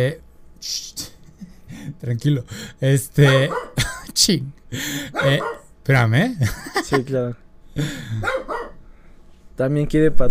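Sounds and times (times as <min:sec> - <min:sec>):
speech: 0:00.0 - 0:01.1, 0:01.7 - 0:08.4, 0:09.6 - 0:10.2
pet dog barking rough, throaty barks: 0:03.2 - 0:03.8, 0:05.1 - 0:05.7, 0:08.2 - 0:08.8
laughter: 0:03.8 - 0:05.1, 0:06.4 - 0:07.1.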